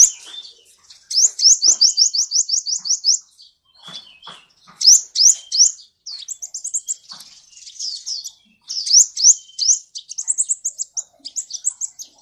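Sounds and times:
sunbird song: 0.0 - 12.2.

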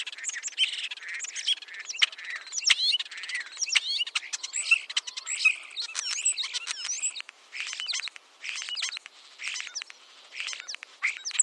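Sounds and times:
Oriental magpie-robin song: 0.0 - 11.4.

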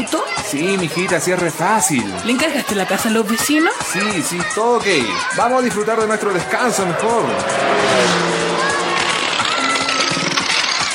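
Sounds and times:
speech: 0.0 - 8.4
small car engine struggling and failing on the road: 5.9 - 10.9.

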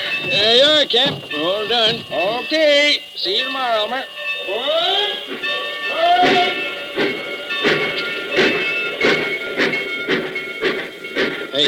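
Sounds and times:
train pulling away chuffing and clanking: 0.0 - 11.6
speech: 0.2 - 7.8
train whistle: 3.3 - 9.8.

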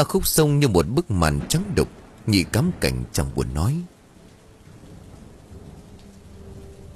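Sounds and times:
speech: 0.0 - 3.9
torrential rain near a river and a small shrine: 0.0 - 6.9.

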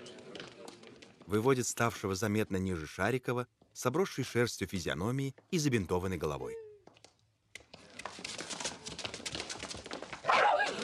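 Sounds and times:
speech: 1.3 - 6.6
dog-like barking in an audio drama: 10.2 - 10.8.

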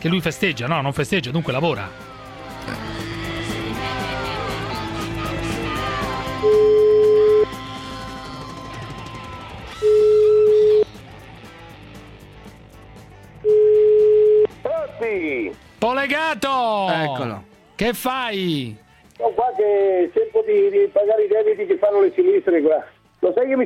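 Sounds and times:
speech: 0.0 - 3.0, 6.4 - 6.8, 15.0 - 23.6
music: 0.0 - 23.6
telephone ringing beeps of a call to a restaurant: 6.4 - 7.5, 9.8 - 10.8, 13.4 - 14.6.

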